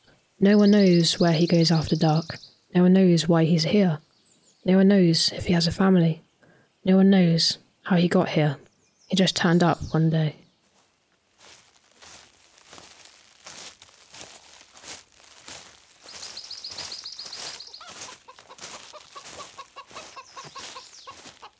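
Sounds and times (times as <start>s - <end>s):
speech: 0.4s - 6.2s, 6.8s - 10.4s
faint rustling: 10.6s - 21.5s
chicken clucking: 16.4s - 21.5s.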